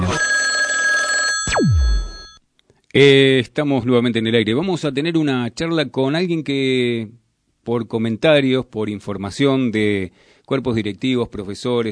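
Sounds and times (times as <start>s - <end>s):
telephone ringing on an outgoing call: 0.0s - 2.4s
speech: 1.5s - 1.9s, 2.9s - 11.9s
sharp falling electronic sweep: 1.5s - 2.3s.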